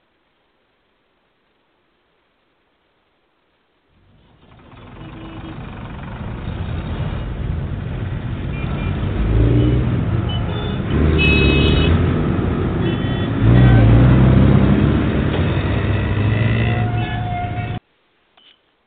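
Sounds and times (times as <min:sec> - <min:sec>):
motorcycle engine with a sidecar roaring and revving around a curve: 0:04.3 - 0:17.8.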